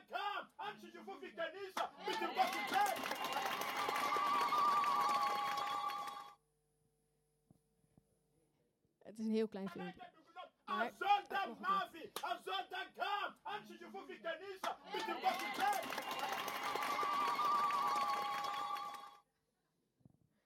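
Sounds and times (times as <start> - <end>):
speech: 0.7 - 3.0, 9.2 - 18.2
large church audience at Easter cheering and shouting joyfully: 1.9 - 6.3, 14.8 - 19.2.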